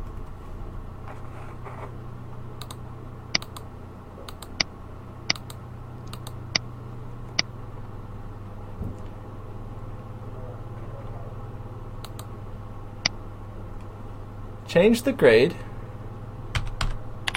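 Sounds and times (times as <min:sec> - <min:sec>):
steady low machine hum: 0:00.0 - 0:17.3
computer keyboard typing: 0:03.4 - 0:03.6, 0:05.3 - 0:06.4, 0:16.5 - 0:17.3
computer mouse clicking: 0:03.4 - 0:03.7, 0:05.3 - 0:06.4, 0:12.0 - 0:12.3
speech: 0:14.8 - 0:15.6.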